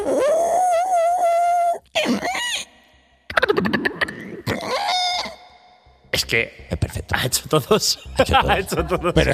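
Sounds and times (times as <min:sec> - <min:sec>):
voice imitating blue whale calls: 0:00.0 - 0:02.7, 0:03.4 - 0:05.6
speech: 0:06.3 - 0:09.3.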